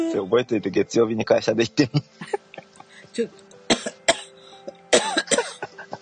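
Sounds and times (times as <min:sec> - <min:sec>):
speech: 0:00.2 - 0:02.5, 0:03.2 - 0:03.5
laughter: 0:01.6 - 0:03.0, 0:05.3 - 0:06.0
person coughing: 0:03.7 - 0:05.9.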